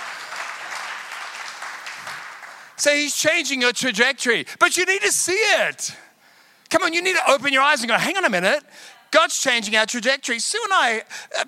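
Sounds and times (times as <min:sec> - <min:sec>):
audience applauding: 0:00.0 - 0:02.8
speech: 0:02.8 - 0:06.1, 0:06.7 - 0:11.4.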